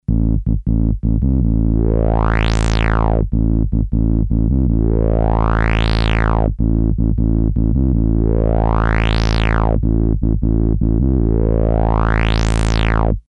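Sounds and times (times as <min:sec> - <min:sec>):
Korg M-500SP Synthe Traveler synthesizer: 0:00.1 - 0:13.2.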